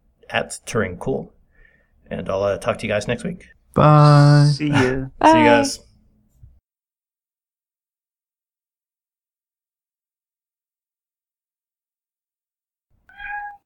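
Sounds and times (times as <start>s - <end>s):
speech: 0.3s - 1.4s, 2.1s - 5.9s
cat meowing: 13.1s - 13.6s.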